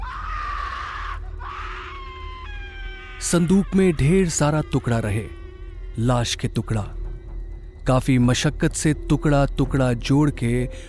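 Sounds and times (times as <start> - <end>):
people screaming in shock as a trunk from a train is opened near Madurai: 0.0 - 4.2
speech: 3.2 - 5.4, 6.0 - 7.0, 7.9 - 10.8.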